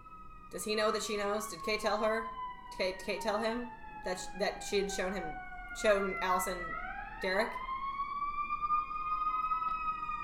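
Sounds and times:
emergency vehicle siren passing outside: 0:00.0 - 0:10.2
speech: 0:00.5 - 0:07.6.

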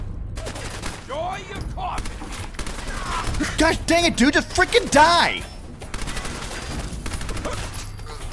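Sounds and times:
submachine gun firing in a video game: 0:00.4 - 0:01.1, 0:02.0 - 0:03.6, 0:05.9 - 0:07.8
speech: 0:03.4 - 0:05.5.

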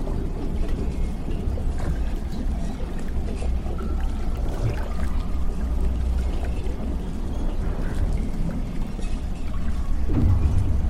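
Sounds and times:
faint liquid trickles: 0:00.0 - 0:10.8
brief metallic groan: 0:09.9 - 0:10.8
heavy low rumble of a damaged underwater lab: 0:09.9 - 0:10.8.

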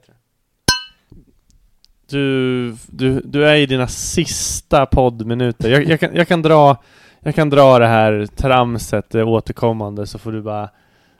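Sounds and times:
glasses clinking in a toast: 0:00.7 - 0:01.0
speech: 0:02.1 - 0:10.8.

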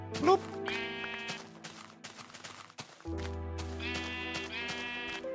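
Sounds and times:
speech: 0:00.1 - 0:00.8
video game sheep bleating: 0:00.4 - 0:01.6, 0:03.8 - 0:05.3.

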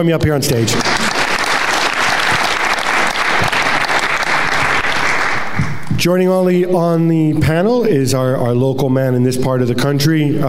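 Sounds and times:
speech: 0:00.0 - 0:01.0, 0:05.9 - 0:10.4
audience applause welcoming a football writer onto the stage at a live event: 0:00.5 - 0:05.9.

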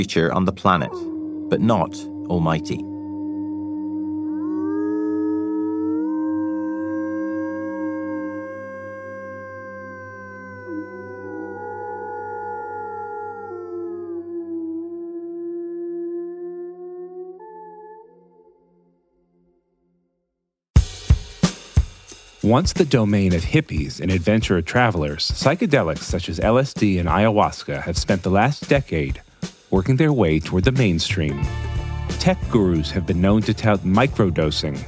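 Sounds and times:
speech: 0:00.0 - 0:02.9, 0:22.5 - 0:34.8
chorus of wolves howling: 0:00.7 - 0:18.7.

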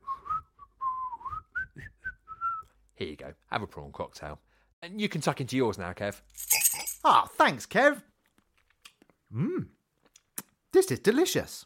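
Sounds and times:
person whistling a short wavering tune: 0:00.0 - 0:02.8
speech: 0:03.0 - 0:08.1, 0:09.3 - 0:09.8, 0:10.9 - 0:11.6.

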